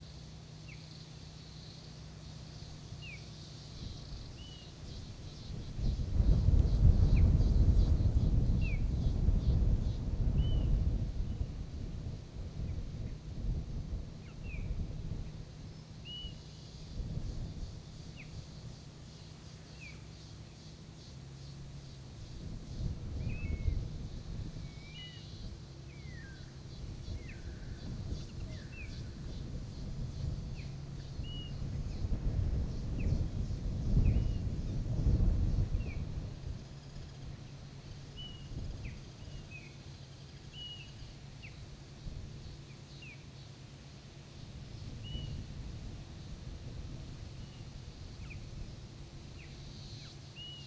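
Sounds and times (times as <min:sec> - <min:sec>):
cicadas in the morning: 0:00.0 - 0:50.6
wind in the morning: 0:00.0 - 0:50.6.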